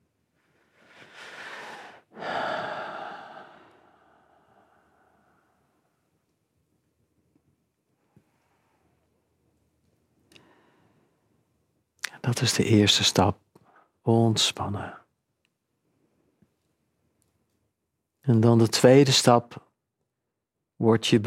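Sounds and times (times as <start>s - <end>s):
slow deliberate breathing during a relaxation exercise: 0.4s - 5.8s
speech: 12.3s - 13.4s, 14.1s - 15.0s, 18.3s - 19.7s, 20.8s - 21.2s.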